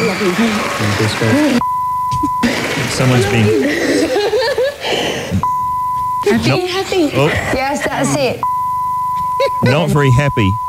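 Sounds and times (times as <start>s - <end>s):
speech: 0.2s - 4.2s, 6.3s - 8.6s, 9.4s - 10.6s
light chuckling: 1.2s - 8.4s, 9.2s - 10.6s
steady censor bleep over swearing: 1.6s - 2.5s, 5.4s - 6.8s, 8.4s - 10.6s.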